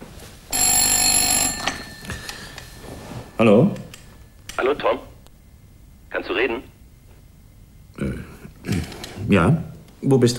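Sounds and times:
telephone bell ringing for an incoming long-distance call: 0.5s - 4.2s
speech: 3.4s - 3.8s, 4.6s - 5.1s, 6.2s - 6.7s, 9.3s - 10.3s.

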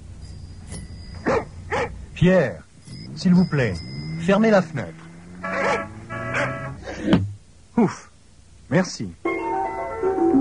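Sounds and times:
low steady hum: 0.0s - 10.2s
dog barking: 1.2s - 2.0s, 5.5s - 6.7s
speech: 2.2s - 5.0s, 7.8s - 8.1s, 8.7s - 9.2s.

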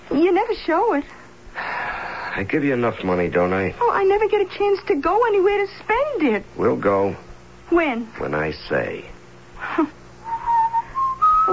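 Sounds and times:
speech: 0.2s - 1.2s, 2.4s - 9.1s, 9.7s - 10.0s
man whistling a slow song: 10.2s - 11.5s.

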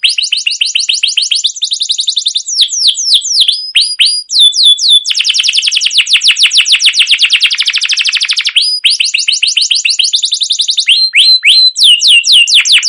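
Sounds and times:
canary singing trilled phrases as a lure: 0.0s - 12.8s.

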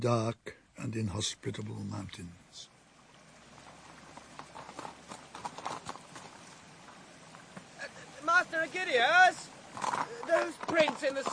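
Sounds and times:
speech: 0.0s - 2.7s, 8.5s - 11.3s
horses' hooves clip-clopping as riders travel: 3.2s - 11.3s.

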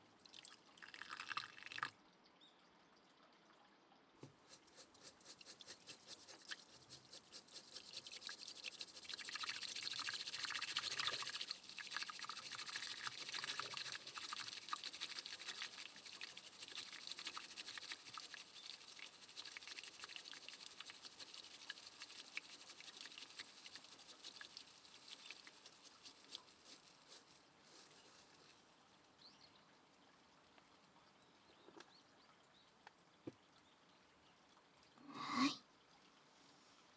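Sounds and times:
hot water poured for tea: 0.2s - 1.9s, 4.2s - 29.3s.

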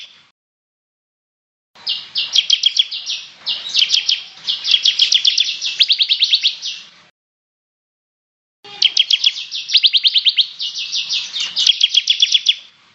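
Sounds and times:
bird song: 0.0s - 0.2s, 1.8s - 6.9s, 8.7s - 12.8s.

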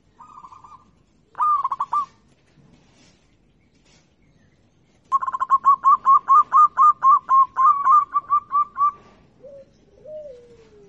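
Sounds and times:
local-type zebra dove cooing song: 0.2s - 2.2s, 5.1s - 10.8s.

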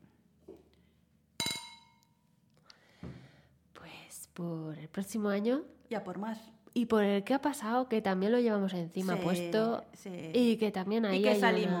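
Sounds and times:
glasses clinking in a New Year's Eve toast with cava: 1.4s - 2.1s
speech: 4.4s - 11.7s.

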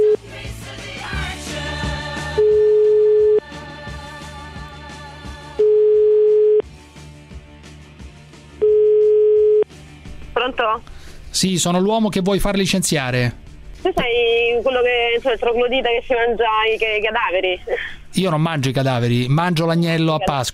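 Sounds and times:
telephone tone while placing a call: 2.4s - 3.4s, 5.6s - 6.6s, 8.6s - 9.7s
busy noise: 10.1s - 20.5s
speech: 11.4s - 20.5s.

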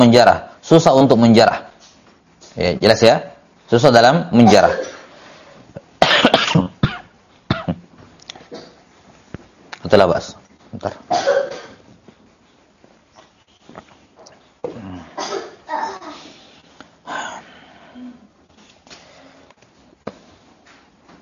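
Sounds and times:
speech: 0.0s - 1.7s, 2.6s - 4.9s, 9.9s - 11.5s
lecturer coughing during a hadith class: 4.4s - 5.1s, 6.0s - 7.8s, 8.5s - 8.8s, 11.1s - 11.8s, 14.6s - 16.3s.

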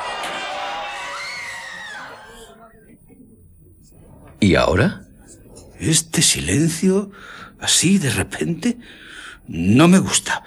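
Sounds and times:
crowd of people screaming and shouting in a street: 0.0s - 2.6s
speech: 4.1s - 5.0s, 5.8s - 10.4s.

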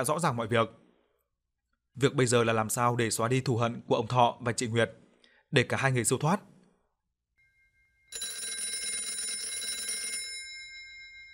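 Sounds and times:
speech: 0.0s - 0.8s, 2.0s - 6.5s
telephone ringing loudly with shrill electronic trill: 7.8s - 11.3s.

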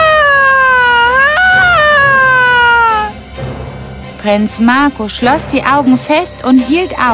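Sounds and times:
loud high wavering scream: 0.0s - 3.2s
speech: 4.2s - 7.1s.

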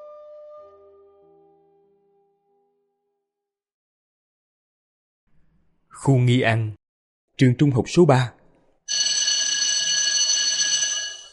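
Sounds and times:
speech: 6.0s - 6.8s, 7.4s - 8.4s
electric school bell ringing at a high school: 8.9s - 11.3s.

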